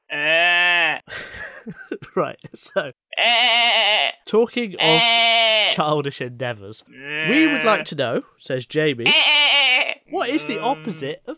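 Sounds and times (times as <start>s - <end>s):
person imitating a sheep bleat: 0.0s - 1.1s, 3.1s - 4.2s, 4.8s - 5.8s, 6.9s - 7.9s, 9.0s - 11.2s
speech: 1.6s - 9.4s, 10.1s - 11.3s.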